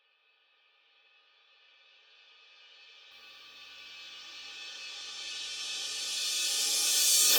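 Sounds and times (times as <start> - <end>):
reversed crash cymbal effect: 5.0 - 7.3.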